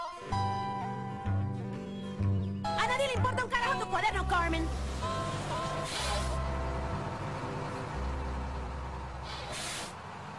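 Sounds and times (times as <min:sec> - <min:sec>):
steady low school bus engine rumble: 0:00.4 - 0:10.3
speech: 0:03.0 - 0:04.9
school bus air brakes hissing: 0:05.2 - 0:06.5, 0:09.2 - 0:10.0.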